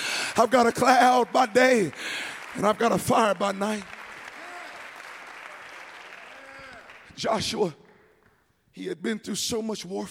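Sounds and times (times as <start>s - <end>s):
church congregation clapping hands during a worship service: 0.0s - 8.5s
speech: 0.4s - 4.0s, 7.2s - 7.8s, 8.8s - 10.0s.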